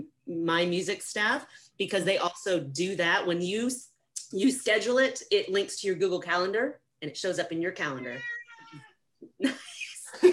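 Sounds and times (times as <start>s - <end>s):
speech: 0.4s - 10.3s
cat meowing insistently for attention: 7.8s - 8.9s.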